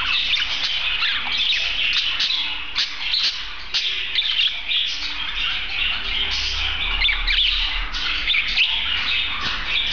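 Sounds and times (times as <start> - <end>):
female budgerigar contentment song: 0.0 - 9.9.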